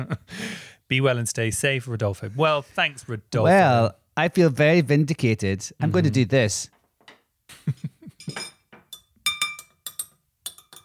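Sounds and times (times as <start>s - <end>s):
speech: 0.0s - 6.8s, 7.5s - 8.5s
glass dinging and clinking: 8.2s - 10.8s.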